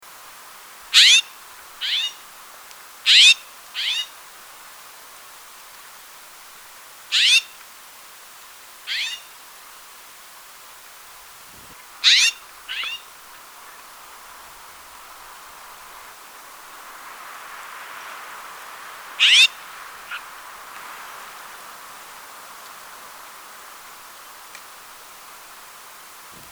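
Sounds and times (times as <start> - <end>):
Woodhouse's scrub jay Aphelocoma woodhouseii woodhouseii: 0.9 - 2.3, 3.1 - 4.2, 7.1 - 7.6, 8.9 - 9.3, 11.5 - 13.8, 19.2 - 20.3, 26.2 - 26.4.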